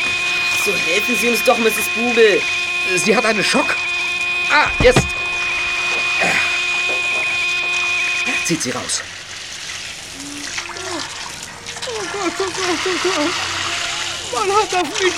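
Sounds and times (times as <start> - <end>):
steady mechanical hum: 0.0 - 15.1
speech: 0.7 - 3.9, 4.5 - 5.2, 8.5 - 9.2, 12.2 - 13.5, 14.3 - 15.1
stuck car door being forced open with scraping creak: 4.5 - 7.8
water gushing from a burst pipe: 4.7 - 15.1.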